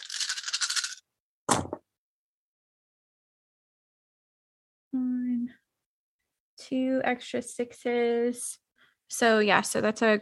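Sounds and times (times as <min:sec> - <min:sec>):
handful of dice rattling and clattering: 0:00.0 - 0:01.0
dice tumbling onto a hard surface: 0:00.0 - 0:01.8
speech: 0:06.6 - 0:10.2.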